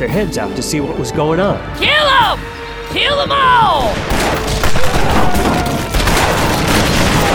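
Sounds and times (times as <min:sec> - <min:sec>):
speech: 0:00.0 - 0:05.7
gunfire, multiple gunshots: 0:03.8 - 0:07.3.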